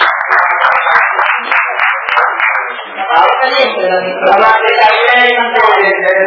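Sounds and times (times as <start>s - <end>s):
audience applause welcoming the mayor: 0.0s - 3.0s
crowd voices: 0.0s - 6.2s.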